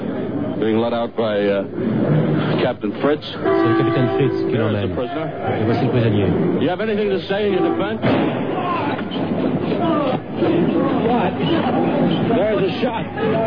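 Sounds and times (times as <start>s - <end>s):
dense noisy crowd with overlapping voices: 0.0s - 13.4s
speech: 0.6s - 13.4s
sharp gunshot: 8.0s - 9.5s.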